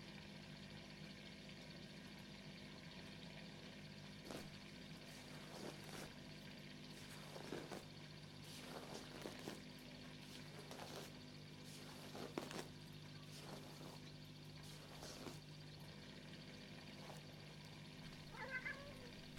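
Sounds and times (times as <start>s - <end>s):
steady low electrical hum: 0.0s - 19.3s
hungry cat meowing: 18.2s - 19.3s.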